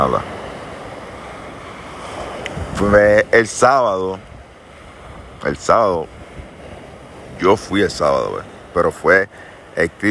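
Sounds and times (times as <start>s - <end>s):
speech: 0.0s - 0.4s, 2.8s - 4.3s, 5.4s - 6.2s, 7.4s - 10.1s
strong wind blowing: 0.0s - 10.1s.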